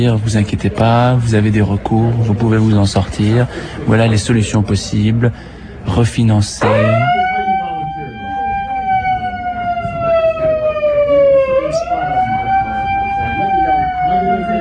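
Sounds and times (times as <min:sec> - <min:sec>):
speech: 0:00.0 - 0:07.2
siren-like alarm bell wailing: 0:06.6 - 0:14.5.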